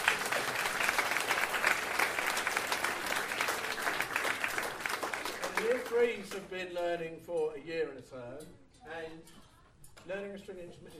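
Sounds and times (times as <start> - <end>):
sizable crowd applauding: 0.0 - 6.4
speech: 5.9 - 9.4, 10.1 - 10.9.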